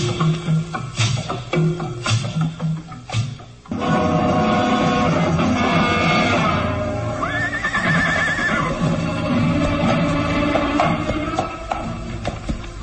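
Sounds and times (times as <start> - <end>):
hooves clattering: 0.0 - 12.8
horse whinnying as reined to stop: 4.9 - 12.0.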